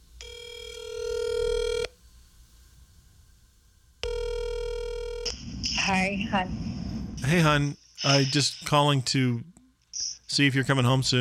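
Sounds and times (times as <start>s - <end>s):
long buzzy electronic telephone ringing tones: 0.2s - 1.9s, 4.0s - 5.3s
speech: 5.9s - 6.6s, 7.2s - 9.5s, 10.3s - 11.1s.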